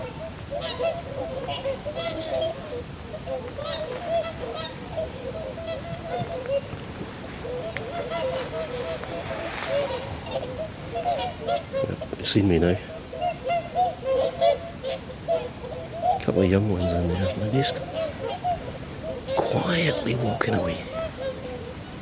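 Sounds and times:
greylag geese honking: 0.0 - 21.9
outdoor rumble of wind or water: 0.0 - 22.0
speech: 11.0 - 12.9, 16.4 - 18.0, 19.7 - 20.9.

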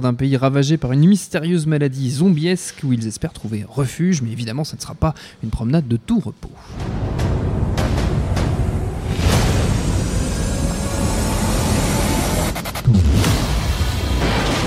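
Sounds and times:
speech: 0.0 - 7.2
heavy hit: 6.6 - 14.6
cinematic explosions in a movie trailer: 6.7 - 14.6.

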